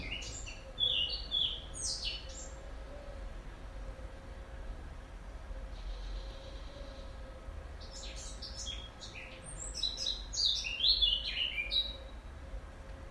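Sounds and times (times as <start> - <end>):
European robin singing: 0.0 - 3.2, 5.6 - 12.2.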